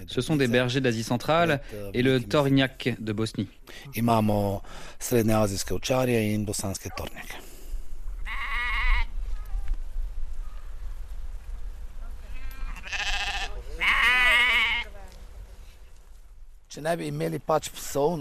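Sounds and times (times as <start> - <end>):
speech: 0.1 - 7.5, 16.8 - 18.1
flock of adult sheep with lambs bleating: 8.2 - 9.2, 12.3 - 15.0.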